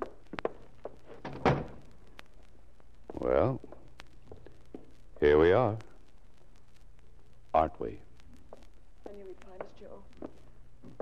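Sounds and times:
door being closed: 1.1 - 1.8
speech: 3.3 - 3.7, 5.3 - 5.9.

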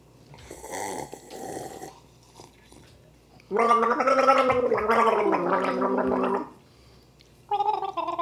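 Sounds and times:
person gargling water: 0.4 - 2.0, 3.5 - 6.6.

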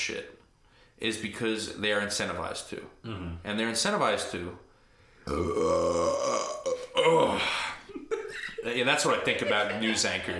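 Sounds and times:
speech: 0.0 - 0.4, 1.0 - 4.6, 5.2 - 7.7, 8.3 - 10.3
loud deep burp: 5.2 - 7.5
laughter: 7.9 - 10.3.

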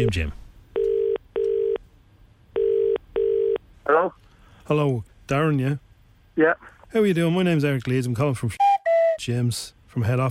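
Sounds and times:
speech: 0.0 - 0.4, 3.9 - 5.8, 6.4 - 10.3
phone line ringing tone: 0.8 - 1.8, 2.6 - 3.6.

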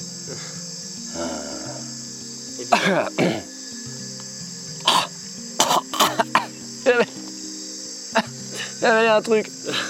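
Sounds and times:
high chorus of crickets in the jungle: 0.0 - 9.8
speech: 2.6 - 3.4, 8.8 - 9.8
person coughing after swallowing a mosquito: 2.7 - 3.4, 4.9 - 6.5
person clearing throat: 2.7 - 3.5, 4.8 - 6.5.

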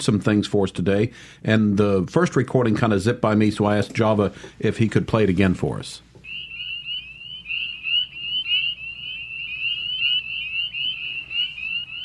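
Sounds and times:
speech: 0.0 - 6.1
spring peeper frogs calling in Mississippi: 6.2 - 12.0.

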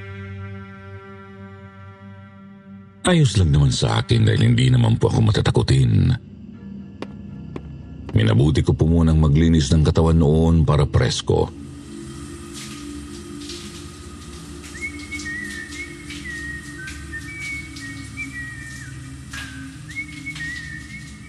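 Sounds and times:
speech: 3.1 - 6.3, 8.2 - 11.6
person whistling a wandering tune: 14.6 - 21.2.

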